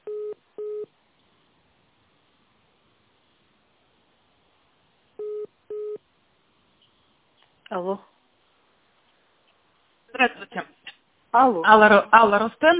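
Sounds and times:
telephone line beeps while a call is transferred: 0.0s - 0.9s, 5.2s - 6.0s
speech: 7.7s - 8.1s, 11.4s - 12.7s.

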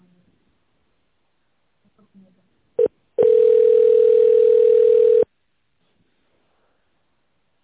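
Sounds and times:
telephone tone as a company call is transferred: 2.8s - 5.3s.

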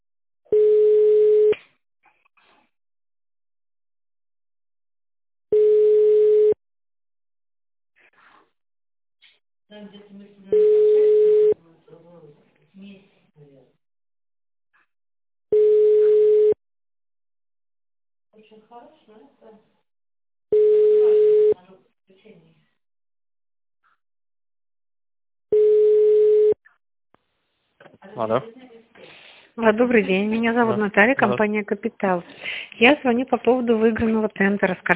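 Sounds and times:
telephone ringback tone while a call is transferred: 0.5s - 1.6s, 5.5s - 6.6s, 10.5s - 11.6s, 15.5s - 16.6s, 20.5s - 21.6s, 25.5s - 26.6s
speech: 9.7s - 10.9s, 18.5s - 19.8s, 28.0s - 28.7s, 29.6s - 34.9s.

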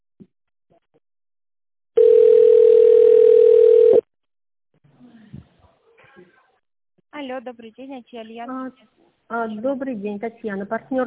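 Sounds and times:
telephone beep tone signalling start of voicemail recording: 2.0s - 4.0s
speech: 7.3s - 11.0s.

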